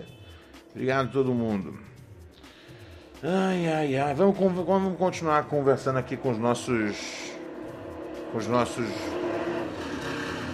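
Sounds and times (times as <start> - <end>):
speech: 0.8 - 1.9, 3.2 - 7.2, 8.3 - 9.2
motorcycle with loud raspy modified exhaust revving: 3.6 - 10.5.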